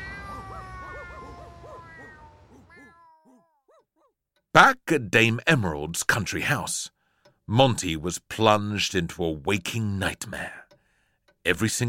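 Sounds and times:
cats meowing and yowling: 0.0 - 3.9
speech: 4.6 - 10.6, 11.4 - 11.8.

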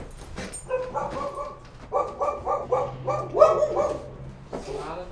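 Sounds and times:
dogs whining: 0.4 - 4.3
dogs barking and yipping in neighboring yard: 0.4 - 4.8.

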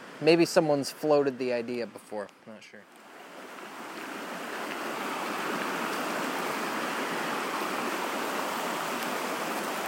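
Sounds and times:
speech: 0.2 - 3.0
fast-moving river rapids rushing and gurgling: 3.0 - 9.8.

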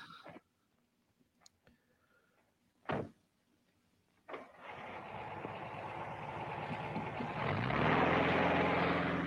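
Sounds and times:
thump: 2.8 - 3.2
Volkswagen car engine drone: 4.4 - 9.2.

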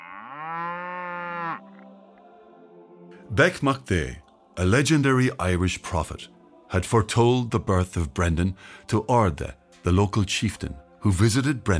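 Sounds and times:
cow mooing: 0.0 - 1.8
speech: 3.3 - 11.7.

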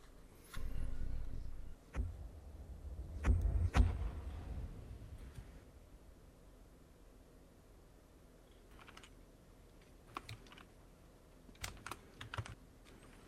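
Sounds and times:
low rumble: 0.6 - 8.0
computer keyboard typing: 8.7 - 9.2, 10.1 - 10.8, 11.6 - 13.2.

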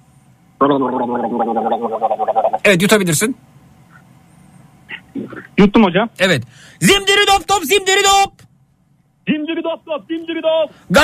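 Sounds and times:
person gargling with turnip juice drink: 0.6 - 2.6
speech: 0.6 - 3.5, 5.6 - 8.5, 9.3 - 11.0.

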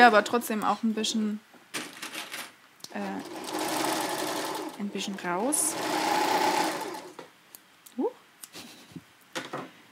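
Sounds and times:
speech: 0.0 - 1.5, 2.9 - 3.4, 4.8 - 6.0
sewing machine stitching: 3.0 - 7.2.

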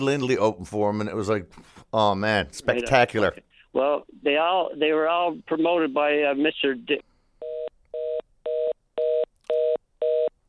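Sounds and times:
speech: 0.0 - 7.1
dropped phone call line tones: 7.4 - 10.4.

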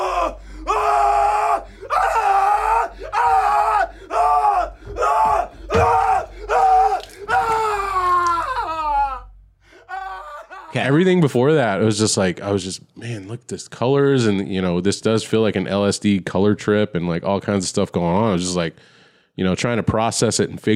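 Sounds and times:
man screaming in a film's bathroom scene: 0.0 - 11.0
man gasping: 0.3 - 0.7, 1.6 - 1.9, 3.9 - 4.1, 4.7 - 7.4, 18.8 - 19.4
speech: 10.8 - 20.7.

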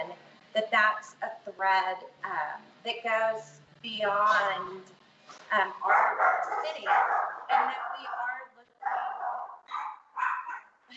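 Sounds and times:
speech: 0.6 - 7.8
dogs barking: 5.7 - 10.8.

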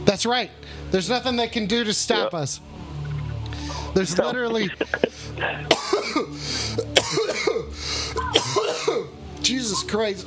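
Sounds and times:
speech: 0.1 - 2.9, 3.9 - 10.2
gasping breaths: 3.5 - 4.0, 4.8 - 5.7, 6.3 - 6.9, 7.7 - 8.3
laughter: 4.0 - 5.7
person in a coughing fit with harsh coughs: 4.2 - 9.1
throat clearing: 4.6 - 9.1.

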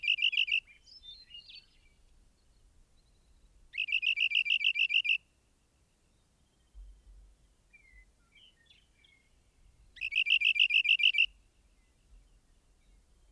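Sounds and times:
rock wren singing a rapid trilled phrase: 0.0 - 0.7, 3.7 - 5.2, 10.0 - 11.3.

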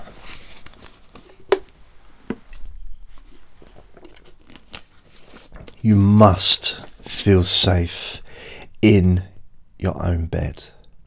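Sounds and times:
person sipping water: 3.2 - 5.8
speech: 5.8 - 8.2, 8.8 - 10.8.

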